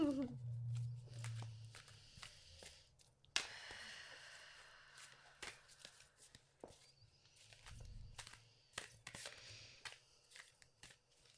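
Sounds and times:
low hum: 0.0 - 2.4
tarot cards being shuffled: 0.0 - 3.7, 5.0 - 11.3.

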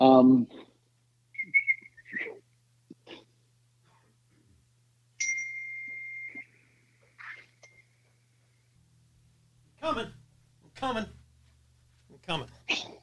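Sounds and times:
speech: 0.2 - 0.6
unsuccessful attempt at whistling: 1.4 - 2.4, 5.2 - 7.9.

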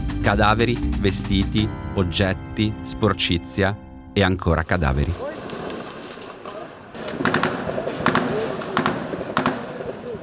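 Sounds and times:
speech: 0.2 - 5.4
rifle gunshots in a street outside a prison: 5.2 - 10.2.

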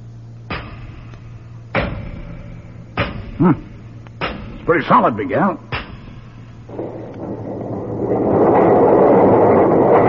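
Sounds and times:
low steady hum: 0.0 - 10.0
heavy doors rumbling open: 0.5 - 10.0
speech: 3.4 - 3.7, 4.7 - 5.7.

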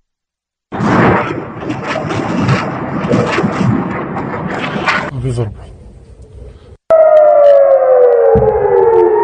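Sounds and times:
rockets launching: 0.7 - 5.1
air raid siren wailing: 6.9 - 9.2.

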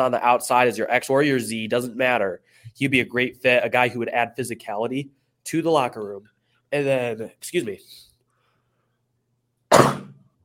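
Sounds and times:
speech: 0.0 - 8.1
person sneezing from allergies: 9.7 - 10.2.

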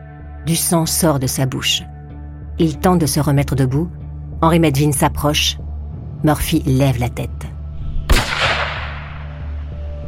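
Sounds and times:
speech: 0.4 - 1.9, 2.6 - 7.5
gunshot: 7.9 - 9.5.

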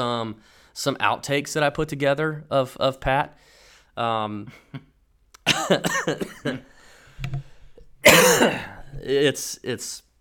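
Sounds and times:
speech: 0.0 - 4.9, 5.5 - 10.0
coughing into a microphone: 5.4 - 6.6, 8.0 - 9.0
throat clearing: 8.0 - 9.0.

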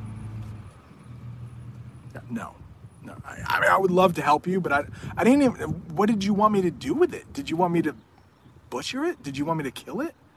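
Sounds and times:
vehicle engine rumbling: 0.0 - 10.3
speech: 2.2 - 8.1, 8.7 - 10.2.

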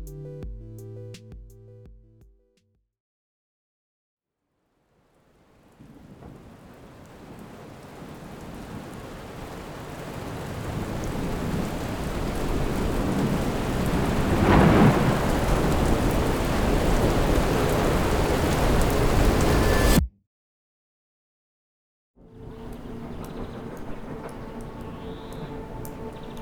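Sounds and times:
heavy rain: 5.6 - 19.7, 22.5 - 26.3
thunder rumble: 10.7 - 20.0, 22.6 - 26.3.

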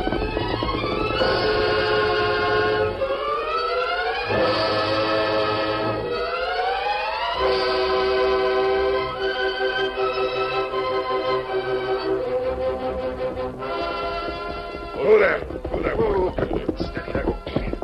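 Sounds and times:
horse hooves clip-clopping: 0.0 - 3.2, 13.2 - 17.8
sustained orchestral music: 1.1 - 16.0.

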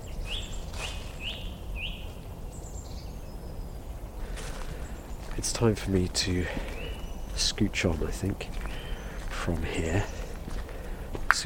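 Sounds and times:
song thrush singing: 0.0 - 2.1
low outdoor rumble: 0.0 - 11.4
speech: 5.4 - 6.7, 7.4 - 8.6, 9.5 - 10.2.

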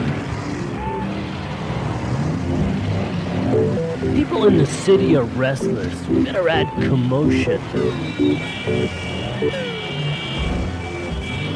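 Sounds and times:
city traffic engine rumble from many cars: 0.0 - 11.5
tonal whine: 3.5 - 9.6
speech: 4.2 - 9.7.

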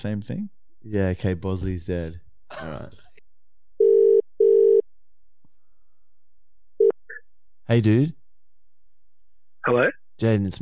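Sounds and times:
speech: 0.0 - 3.0, 7.7 - 8.2, 9.6 - 10.5
phone line electronic ringback tone in a double-pulse pattern: 3.8 - 4.8.

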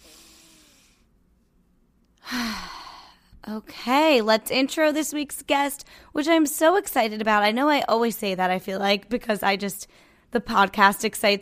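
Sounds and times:
deep breath in and out in a guided breathing exercise: 0.0 - 1.1, 2.2 - 3.4, 5.8 - 6.1, 9.9 - 10.3
speech: 3.4 - 11.4.

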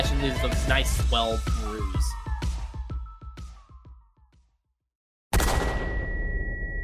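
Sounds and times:
speech: 0.2 - 2.2
rapid string of sharp gunshot cracks: 5.3 - 5.9
loud gunshot blast with lingering metallic ringing tone: 5.3 - 6.5.

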